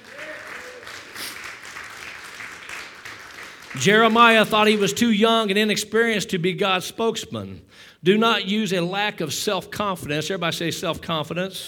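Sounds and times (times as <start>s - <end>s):
audience applause: 0.0s - 4.4s
speech: 3.8s - 11.6s.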